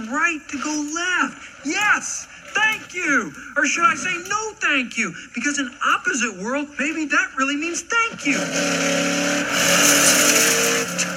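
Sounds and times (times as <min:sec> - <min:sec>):
speech: 0:00.1 - 0:11.0
car tires squealing: 0:08.1 - 0:11.1
car engine roaring past: 0:08.3 - 0:11.1.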